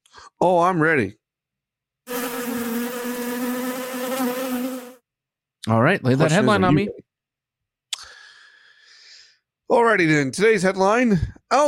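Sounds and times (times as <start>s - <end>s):
speech: 0.4s - 1.2s, 5.7s - 7.0s, 9.7s - 11.6s
bee buzzing: 2.1s - 5.0s.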